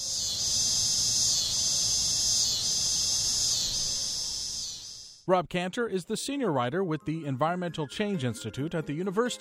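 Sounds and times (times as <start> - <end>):
cicadas singing in trees in summer: 0.0 - 5.2
speech: 5.3 - 9.3.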